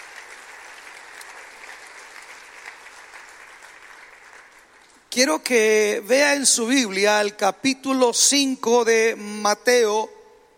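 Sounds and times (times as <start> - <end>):
congregation applauding: 0.0 - 5.2
speech: 5.2 - 10.2.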